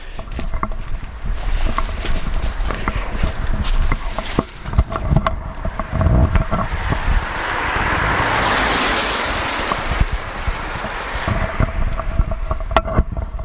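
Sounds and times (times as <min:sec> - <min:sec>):
outdoor rustling noise: 0:00.0 - 0:13.4
car passing along a road: 0:04.4 - 0:12.6.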